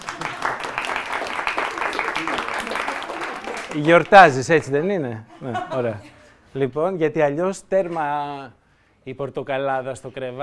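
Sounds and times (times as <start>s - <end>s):
crowd applauding for a woman celebrating her name day: 0.0s - 4.8s
speech: 3.8s - 10.4s
laughter: 5.3s - 6.3s.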